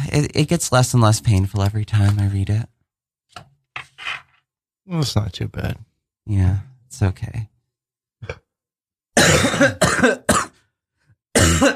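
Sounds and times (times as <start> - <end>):
speech: 0.2 - 2.7, 4.9 - 7.5, 8.2 - 8.4, 9.2 - 10.4
loud harsh coughing: 9.2 - 10.7, 11.3 - 11.7.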